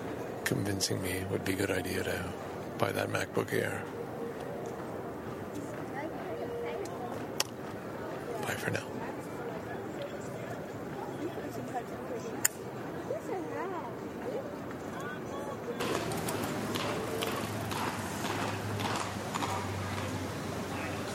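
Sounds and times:
outdoor street crowd chatter in Quebec City: 0:00.0 - 0:21.1
speech: 0:00.5 - 0:04.0, 0:08.5 - 0:08.9
carriage horse right front hoof striking a paved sidewalk in Quebec City: 0:15.8 - 0:21.1.

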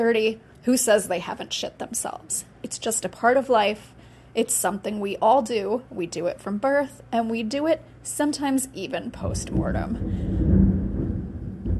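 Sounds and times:
speech: 0:00.0 - 0:10.3
thunder rumbling: 0:09.2 - 0:11.7.

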